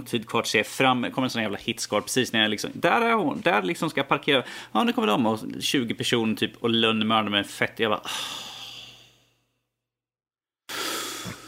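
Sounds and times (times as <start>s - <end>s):
speech: 0.0s - 8.5s
deep breathing: 4.4s - 4.8s, 8.0s - 9.6s, 10.7s - 11.4s.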